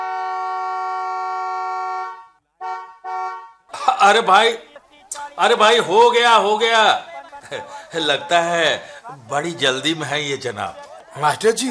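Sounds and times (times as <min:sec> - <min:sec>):
car horn honking: 0:00.0 - 0:03.8
speech: 0:04.0 - 0:04.7, 0:05.4 - 0:11.7.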